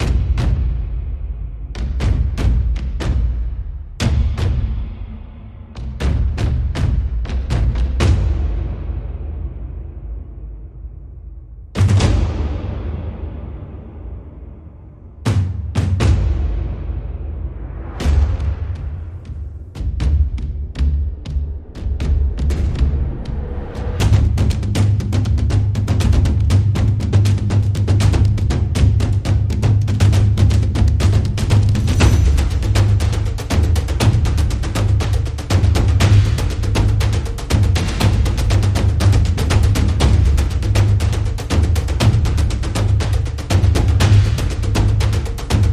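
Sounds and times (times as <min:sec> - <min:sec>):
big epic drums: 0:00.0 - 0:45.7.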